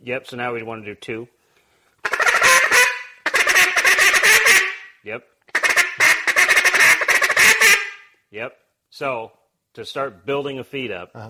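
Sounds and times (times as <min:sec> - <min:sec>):
speech: 0:00.0 - 0:01.4, 0:05.0 - 0:05.3, 0:08.3 - 0:11.2
duck call blown in raspy drag notes: 0:02.0 - 0:08.1.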